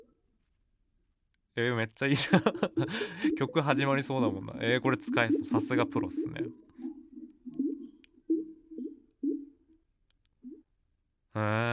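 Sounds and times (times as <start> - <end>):
speech: 1.6 - 6.6, 11.4 - 11.7
laughter: 2.1 - 3.2
hollow gurgling from clogged bathroom sink drain pipe: 2.4 - 9.6.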